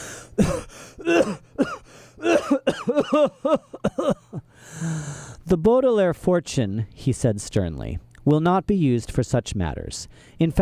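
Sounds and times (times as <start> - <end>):
person coughing harshly: 0.4 - 4.4
speech: 5.6 - 10.6.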